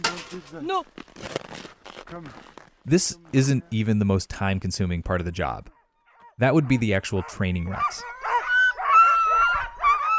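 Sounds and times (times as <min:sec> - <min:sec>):
speech: 0:00.3 - 0:01.4, 0:02.1 - 0:05.8, 0:06.4 - 0:08.1
sled dogs barking and yelping excitedly before a run: 0:05.7 - 0:10.1.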